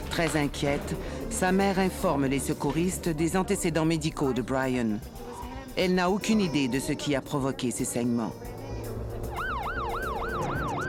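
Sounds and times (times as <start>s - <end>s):
speech: 0.2s - 5.2s, 5.8s - 8.5s
ambulance siren rushing a child to a children's hospital: 9.3s - 10.8s.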